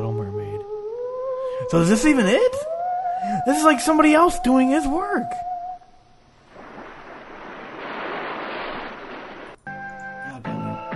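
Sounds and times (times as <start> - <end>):
speech: 1.7 - 5.5
ocean surf: 6.4 - 9.6.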